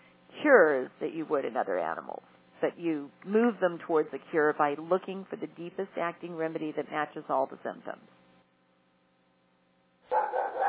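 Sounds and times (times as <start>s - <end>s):
faint low hum: 0.0s - 10.6s
speech: 0.4s - 8.2s
dog barking: 10.1s - 10.6s.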